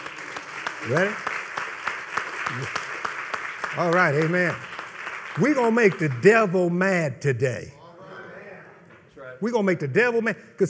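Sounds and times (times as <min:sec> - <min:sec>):
scattered applause: 0:00.0 - 0:06.7
crowd clapping in a steady rhythmic beat: 0:00.0 - 0:07.5
speech: 0:00.8 - 0:01.3, 0:02.5 - 0:02.8, 0:03.7 - 0:04.7, 0:05.4 - 0:07.8, 0:09.4 - 0:10.6.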